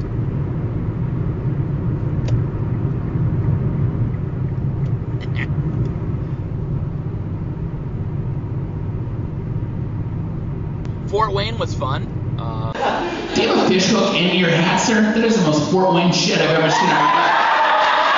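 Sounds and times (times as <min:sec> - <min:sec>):
road noise inside a moving car: 0:00.0 - 0:12.9
laughter: 0:12.7 - 0:15.3
speech: 0:14.2 - 0:17.2.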